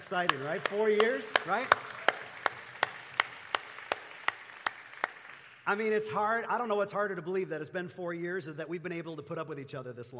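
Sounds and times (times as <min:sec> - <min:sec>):
speech: 0:00.0 - 0:01.9, 0:05.7 - 0:10.1
audience clapping in unison: 0:00.0 - 0:06.0.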